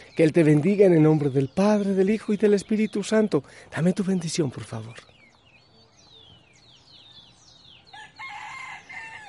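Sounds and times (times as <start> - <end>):
speech: 0.2 - 5.1
rooster crowing: 7.9 - 9.2.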